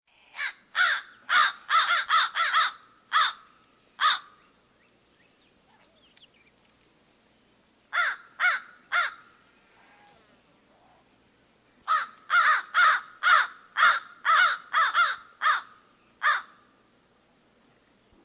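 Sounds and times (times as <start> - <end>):
American crow: 0.3 - 4.4, 7.9 - 9.2, 11.9 - 16.6.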